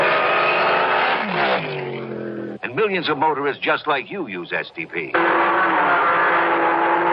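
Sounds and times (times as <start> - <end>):
race car engine revving: 0.0 - 2.6, 5.1 - 7.1
speech: 2.8 - 6.1.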